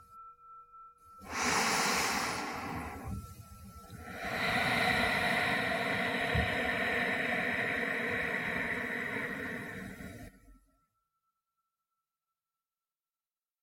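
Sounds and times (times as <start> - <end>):
deep nasal inhale in a guided relaxation breathing exercise: 1.2 - 10.3
long steady airy exhale in a guided relaxation breathing exercise: 1.2 - 10.3.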